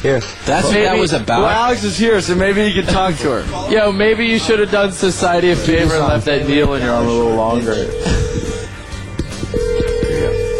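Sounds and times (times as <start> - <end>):
speech: 0.0 - 8.2
phone ringing tone: 6.4 - 8.8, 9.4 - 10.5.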